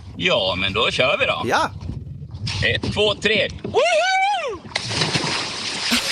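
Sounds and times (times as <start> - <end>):
speech: 0.2 - 1.9, 2.6 - 4.3
person shouting: 1.4 - 1.7
big splash of a person jumping into a lake: 4.7 - 6.1
churning sloshing lake water: 4.7 - 6.1.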